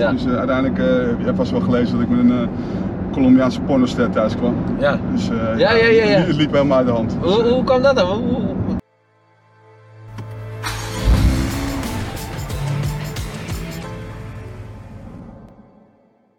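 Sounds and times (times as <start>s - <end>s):
speech: 0.0s - 8.6s
car engine revving and accelerating: 10.4s - 15.6s.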